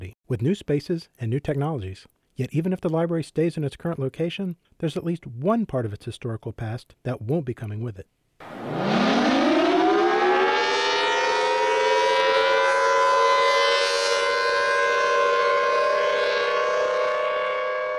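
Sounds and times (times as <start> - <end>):
speech: 0.3 - 9.0
old civil defense siren wailing: 8.4 - 17.9.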